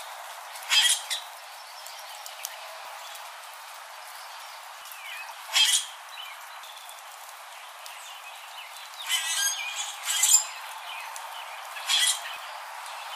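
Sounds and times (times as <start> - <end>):
bronzed grackle calling: 0.7 - 1.3, 5.5 - 6.0, 9.0 - 10.6, 11.7 - 12.4.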